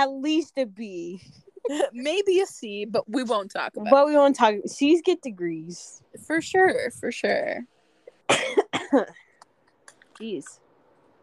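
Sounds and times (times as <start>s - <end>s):
speech: 0.0s - 9.2s, 10.2s - 10.6s
harsh coughs: 8.2s - 9.2s.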